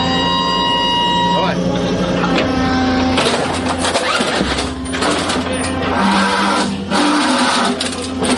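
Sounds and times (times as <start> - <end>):
155-mm self-propelled howitzer whirring and hydraulic hum during loading: 0.0 - 8.3.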